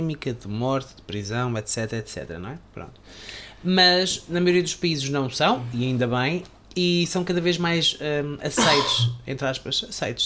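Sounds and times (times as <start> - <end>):
speech: 0.0 - 10.2
sneeze: 8.6 - 9.2.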